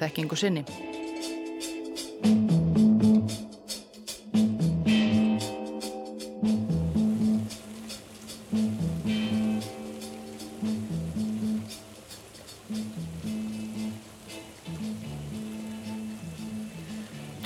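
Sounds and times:
speech: 0.0s - 1.4s, 2.2s - 2.5s
steady rain pattering and hissing: 2.2s - 17.4s
low sustained musical tones shifting slowly in pitch: 4.9s - 17.4s.

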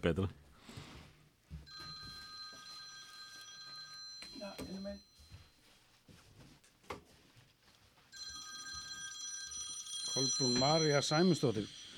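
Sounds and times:
speech: 0.0s - 0.4s, 4.4s - 5.1s, 10.2s - 11.8s
telephone ringing with bright electronic tone: 1.7s - 5.6s, 8.1s - 11.9s.

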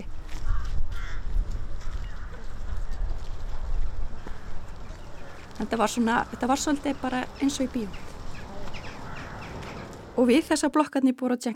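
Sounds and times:
crows cawing: 0.3s - 3.0s, 4.0s - 10.2s
speech: 5.6s - 8.1s, 10.2s - 11.5s.

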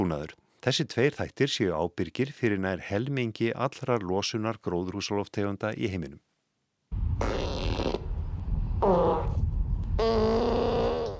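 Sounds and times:
speech: 0.0s - 6.3s
cows farting with loud flatulent blasts: 6.9s - 10.8s
steady low rumble of noise: 6.9s - 11.1s.

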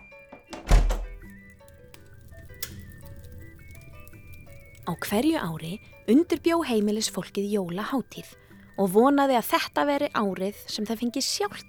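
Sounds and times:
door being shut quickly with a heavy thunk: 0.4s - 1.2s
speech: 4.9s - 11.6s.

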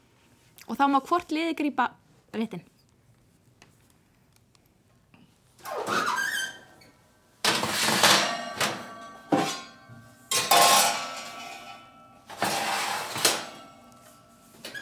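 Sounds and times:
speech: 0.7s - 2.7s
metal baking tray scraping and clattering into an oven: 7.4s - 13.9s
metallic clang of a baking tray: 7.5s - 13.9s.

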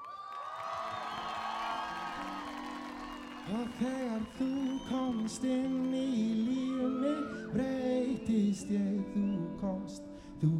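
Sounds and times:
sustained audience applause: 0.0s - 7.2s
high shouts from the crowd: 0.0s - 7.7s
large crowd cheering and whooping: 0.0s - 9.6s
speech: 3.5s - 10.5s.

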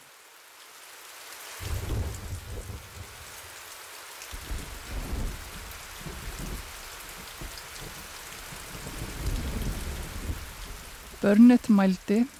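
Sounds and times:
heavy rain: 0.0s - 12.3s
deep rolls of thunder rumbling: 1.6s - 3.4s, 4.4s - 12.3s
speech: 11.2s - 12.3s.

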